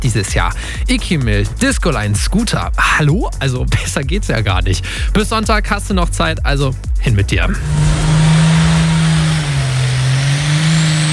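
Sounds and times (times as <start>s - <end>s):
speech: 0.0s - 8.1s
harmonic engine whine: 7.5s - 11.1s
heavy tractor pulling engine roaring in Edewecht: 7.5s - 11.1s.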